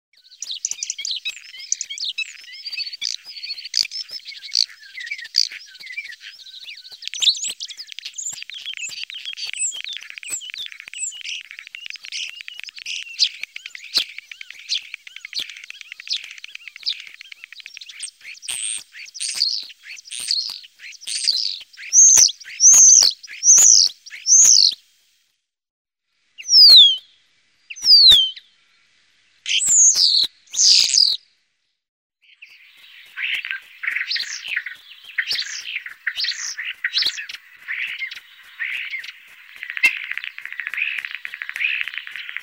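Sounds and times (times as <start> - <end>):
starling calling: 0.2 - 24.8, 26.4 - 28.5, 29.5 - 31.2, 32.2 - 42.4.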